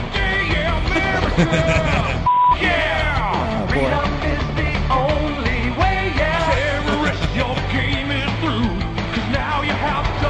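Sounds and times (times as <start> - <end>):
busy overlapping voices: 0.3 - 10.2
laughter: 0.6 - 4.1, 6.4 - 8.6
speech: 1.4 - 2.8
short steady electronic beep: 2.3 - 2.6.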